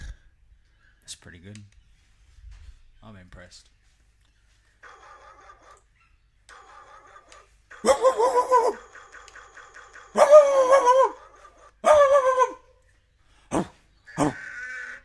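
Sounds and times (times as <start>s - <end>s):
speech: 1.3s - 1.8s, 3.0s - 3.8s
dog barking and howling: 7.8s - 8.8s, 10.1s - 12.7s, 13.5s - 14.4s
dog yelping: 7.8s - 8.8s, 10.1s - 12.6s.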